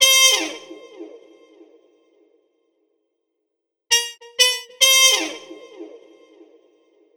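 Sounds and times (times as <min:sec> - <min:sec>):
muted brass with delay: 0:03.9 - 0:05.6.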